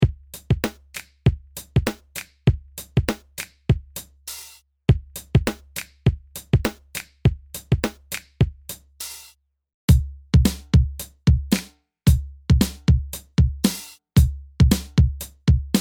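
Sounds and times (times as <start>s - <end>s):
hip hop drum kit patch on Fantom-X8 synthesizer: 0.0s - 9.3s, 9.9s - 15.7s.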